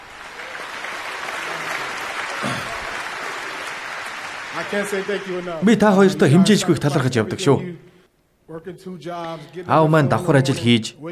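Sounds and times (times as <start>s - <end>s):
audience applause during a speech honouring the speaker's parents: 0.0s - 7.0s
speech: 4.6s - 7.9s, 8.5s - 11.1s.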